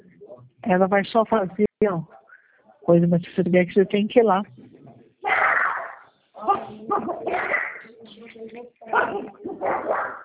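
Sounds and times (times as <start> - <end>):
speech: 0.6 - 2.2, 2.9 - 4.6
dog barking: 5.3 - 7.4, 8.9 - 10.2.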